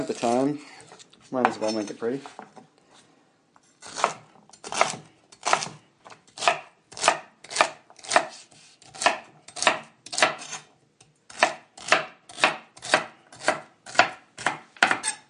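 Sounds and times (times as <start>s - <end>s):
speech: 0.0s - 2.6s
knife chopping carrots, celery and onion for a mirepoix: 3.8s - 10.7s, 11.3s - 15.2s.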